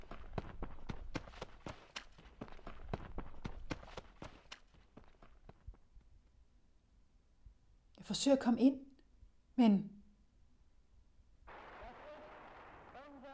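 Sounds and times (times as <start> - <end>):
footsteps of someone running on a hard surface: 0.0 - 5.9
speech: 8.1 - 8.9, 9.6 - 9.9.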